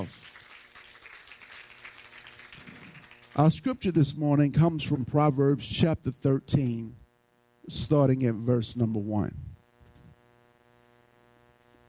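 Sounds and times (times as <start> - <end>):
speech: 0.0 - 0.3, 3.4 - 7.0, 7.7 - 9.4
church congregation clapping hands in praise during a service: 0.0 - 4.1.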